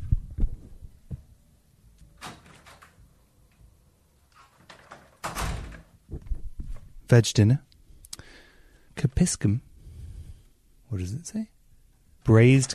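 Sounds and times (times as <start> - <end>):
door opening and closing: 2.0 - 3.6, 4.3 - 6.8, 12.5 - 12.7
door closing thud: 4.6 - 6.4
speech: 7.1 - 7.7, 9.0 - 9.7, 10.9 - 11.6, 12.2 - 12.7.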